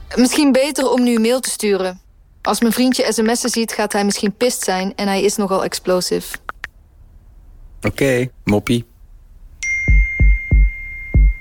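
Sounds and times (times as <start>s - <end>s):
speech: 0.1s - 6.5s, 7.8s - 8.9s
bright electronic chime ringing: 9.6s - 11.3s.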